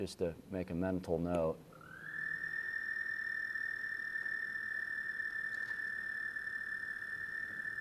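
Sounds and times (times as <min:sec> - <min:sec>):
speech: 0:00.0 - 0:01.7
faint hum of other night sounds: 0:00.0 - 0:07.7
American toad long high-pitched trill: 0:01.7 - 0:07.7.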